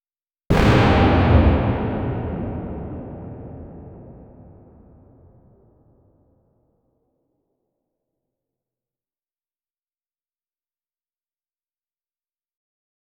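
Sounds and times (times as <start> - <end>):
explosive aura effect of a gem stone: 0.5 - 5.5.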